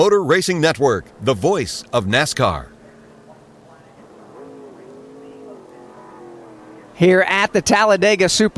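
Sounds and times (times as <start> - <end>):
speech: 0.0 - 2.7, 7.0 - 8.5
race car engines accelerating out of the pit lane: 0.6 - 8.5.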